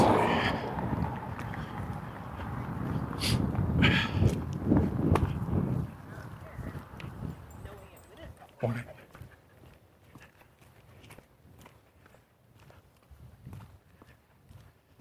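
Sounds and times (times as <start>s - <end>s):
woman's and dog's footsteps outdoors: 0.0s - 14.9s.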